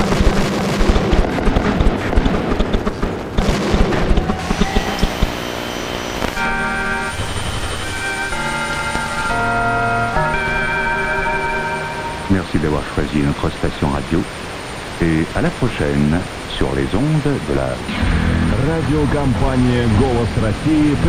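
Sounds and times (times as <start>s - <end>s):
firecrackers and explosive charges going off in a street: 0.0s - 9.1s
sustained tones: 4.0s - 21.0s
speech: 13.2s - 21.0s.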